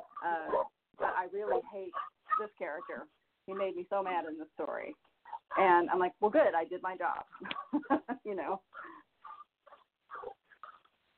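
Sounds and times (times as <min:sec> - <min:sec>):
dogs barking and yipping excitedly: 0:00.0 - 0:03.8, 0:05.2 - 0:05.7, 0:07.2 - 0:11.0
speech: 0:00.2 - 0:00.6, 0:01.2 - 0:08.9.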